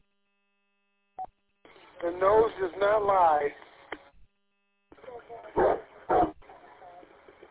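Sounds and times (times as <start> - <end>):
speech: 2.0 - 3.7
dog barking: 5.5 - 6.4.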